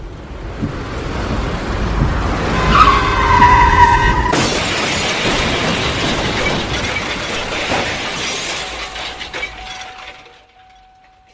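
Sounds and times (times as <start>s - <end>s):
car tires screeching: 0.8s - 6.8s
car smashed hard from behind by another car: 2.1s - 11.3s
scattering debris rattling: 4.1s - 11.3s
glass shattering: 4.3s - 11.3s.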